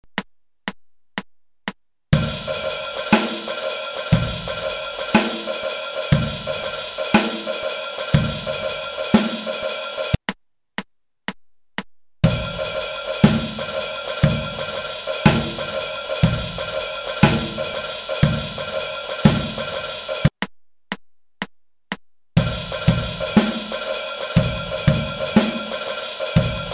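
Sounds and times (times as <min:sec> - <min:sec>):
shuffle halftime beat: 0:02.2 - 0:10.4, 0:12.2 - 0:20.5, 0:22.4 - 0:26.7.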